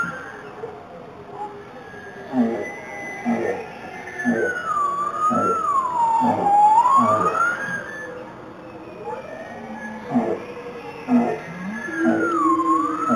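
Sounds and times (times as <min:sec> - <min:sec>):
bowhead whale Balaena mysticetus grunts, rasps and tonal moans: 0:02.3 - 0:04.6, 0:05.2 - 0:07.5, 0:10.0 - 0:13.1.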